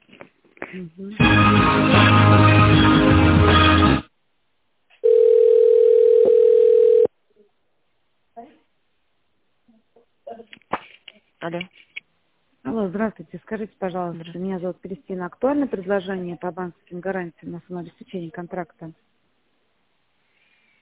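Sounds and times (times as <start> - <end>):
speech: 0.7 - 3.2, 12.9 - 19.1
steady telephone tone while a call is transferred: 5.0 - 7.1.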